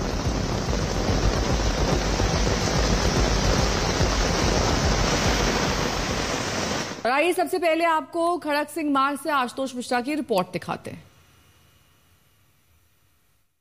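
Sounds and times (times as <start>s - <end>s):
heavy rain pouring: 0.0s - 7.0s
speech: 7.2s - 11.1s.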